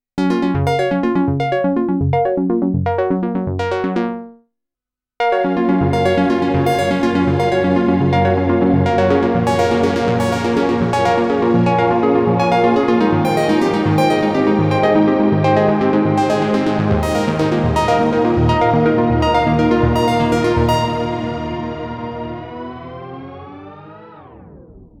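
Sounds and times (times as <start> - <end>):
arpeggio in fifths: 0.2 - 4.4, 5.2 - 24.8.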